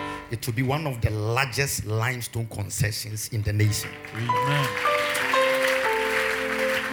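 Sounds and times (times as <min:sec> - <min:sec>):
speech: 0:00.3 - 0:05.2
crowd clapping: 0:03.6 - 0:06.9.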